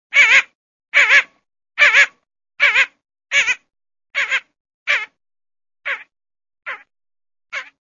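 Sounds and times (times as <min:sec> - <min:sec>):
blue-winged teal: 0:00.1 - 0:05.2, 0:05.8 - 0:06.1, 0:06.7 - 0:06.9, 0:07.5 - 0:07.7.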